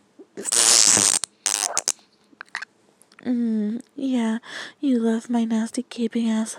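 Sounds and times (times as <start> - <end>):
loud rasping sputtering fart: 0.3 - 2.6
speech: 3.3 - 6.5.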